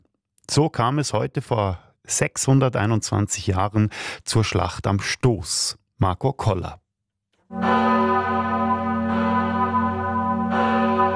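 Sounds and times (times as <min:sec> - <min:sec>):
speech: 0:00.5 - 0:06.8, 0:07.5 - 0:08.1
large parish church bell ringing in Appenzell: 0:07.5 - 0:11.1.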